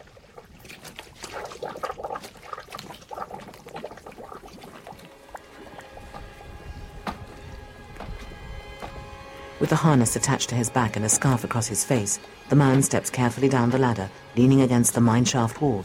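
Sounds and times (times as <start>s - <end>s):
black liquid bubbling up out of mud: 0.0s - 6.7s
speech: 9.6s - 15.8s.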